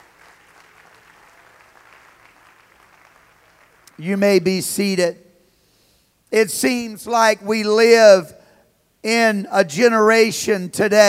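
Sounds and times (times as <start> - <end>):
audience clapping hands: 0.0 - 4.2
speech: 4.0 - 5.2, 6.3 - 8.4, 9.0 - 11.0.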